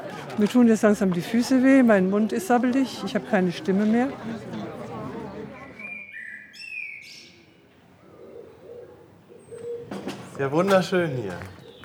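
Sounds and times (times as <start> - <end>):
murmur of noise: 0.0 - 6.5, 7.6 - 11.8
speech: 0.4 - 4.7, 10.4 - 11.6
blackbird singing outdoors: 5.6 - 7.6, 10.6 - 11.8.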